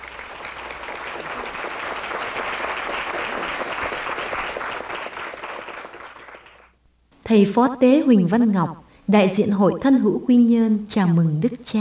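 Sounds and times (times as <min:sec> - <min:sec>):
applause from a sizable audience: 0:00.0 - 0:06.7
speech: 0:07.3 - 0:11.8.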